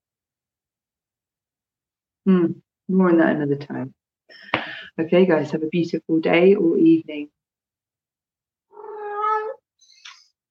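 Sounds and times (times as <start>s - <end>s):
speech: 2.3s - 7.4s
cat meowing: 8.7s - 9.7s.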